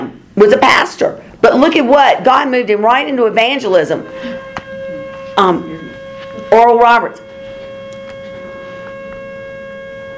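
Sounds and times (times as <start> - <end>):
speech: 0.5 - 4.4, 5.4 - 5.8, 6.5 - 7.2
emergency siren passing outside with sustained tone: 2.6 - 10.1.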